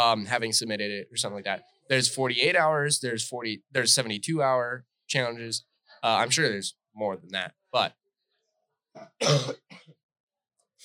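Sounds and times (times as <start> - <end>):
speech: 0.0 - 8.0, 9.0 - 9.9
person clearing throat: 9.0 - 9.9.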